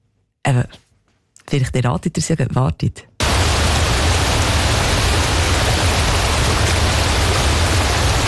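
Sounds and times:
speech: 0:00.5 - 0:00.8, 0:01.5 - 0:03.1
rushing mountain stream or waterfall: 0:03.2 - 0:08.2.

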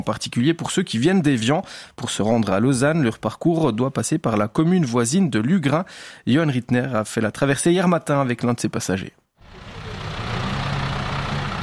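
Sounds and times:
speech: 0:00.0 - 0:09.6
broadband road noise: 0:09.4 - 0:11.6
shuttle bus diesel engine rumble arriving at a ferry landing on a lake: 0:09.4 - 0:11.6.

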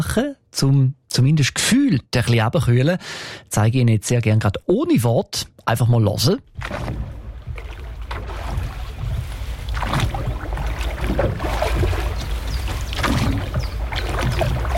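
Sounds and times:
speech: 0:00.0 - 0:07.1
lake water sloshing around a rowboat: 0:06.4 - 0:14.7
rowboat oar splashes on a lake: 0:06.5 - 0:14.7.

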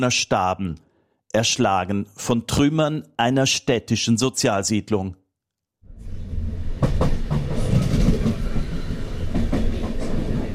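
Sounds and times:
speech: 0:00.0 - 0:05.2
regional express train wheels rumbling across the Po plain near Bergamo: 0:05.9 - 0:10.5
sharp rail clicks: 0:06.0 - 0:10.5.

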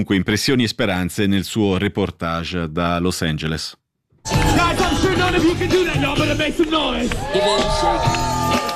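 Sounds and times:
speech: 0:00.0 - 0:08.7
overlapping crowd voices on a wooden seaside pier: 0:04.3 - 0:08.7
people shouting and whooping on a wooden seaside pier: 0:04.3 - 0:08.7.

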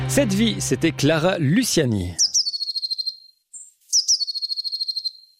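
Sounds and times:
speech: 0:00.1 - 0:02.3
blue tit song: 0:02.1 - 0:05.3.

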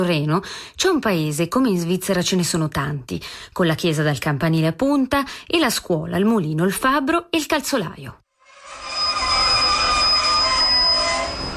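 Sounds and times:
speech: 0:00.0 - 0:08.2
train braking at a small station in Maienfeld Switzerland: 0:08.5 - 0:11.5.

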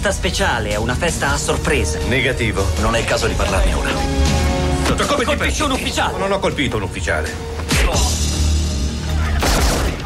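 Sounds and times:
speech: 0:00.0 - 0:08.3
gunfire in an action film trailer: 0:09.4 - 0:10.0.

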